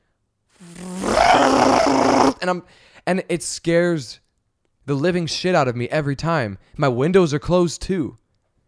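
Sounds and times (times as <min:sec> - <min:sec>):
voice imitating a motorcycle roaring past a car on the highway: 0:00.6 - 0:02.5
speech: 0:02.4 - 0:04.2, 0:04.8 - 0:08.2.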